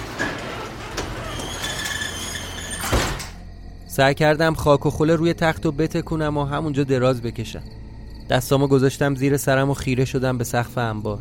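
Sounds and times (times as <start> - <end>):
warehouse door sliding and squeaking along its track: 0.0 - 3.4
speech: 4.0 - 11.1.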